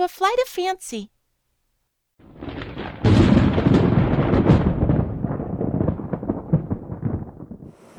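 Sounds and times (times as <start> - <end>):
speech: 0.0 - 1.1
thunder crash: 2.2 - 7.9.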